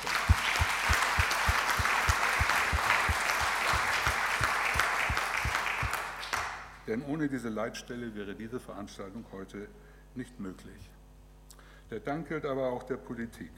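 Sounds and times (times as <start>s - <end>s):
audience applause: 0.0s - 6.7s
speech: 6.9s - 11.0s, 11.9s - 13.5s.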